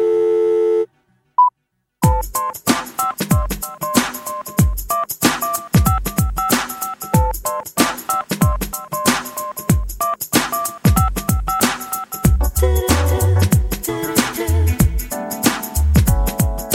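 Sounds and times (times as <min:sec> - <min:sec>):
repeating electronic phone-like beeps: 0:00.0 - 0:01.5, 0:02.1 - 0:08.2, 0:08.8 - 0:12.4
short beep: 0:00.0 - 0:01.5
telephone busy tone after a phone is hung up: 0:00.0 - 0:01.5
loud punchy drum beat: 0:02.0 - 0:16.7.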